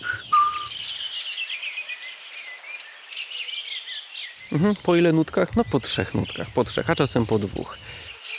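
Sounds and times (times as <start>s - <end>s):
redwing flock chattering: 0.0s - 1.1s, 4.4s - 8.2s
whistled redwing note: 0.0s - 1.1s
speech: 4.5s - 8.1s.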